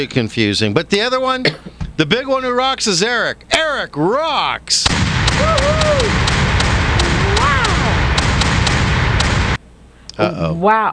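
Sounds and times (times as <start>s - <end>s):
speech: 0.0s - 6.3s, 10.2s - 10.9s
malfunctioning cannon sound effect hissing rush: 4.8s - 9.6s
malfunctioning cannon irregular thudding knocks: 5.2s - 9.6s.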